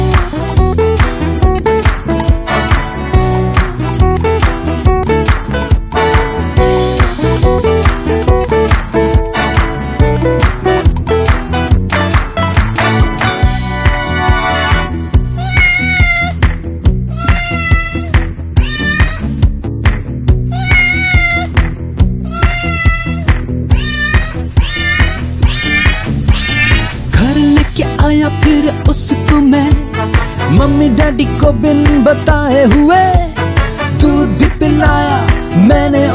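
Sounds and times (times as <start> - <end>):
bouncy steady music track: 0.0 - 36.1
kitten meowing: 15.4 - 16.4, 17.1 - 19.3, 20.5 - 21.6, 22.2 - 27.0.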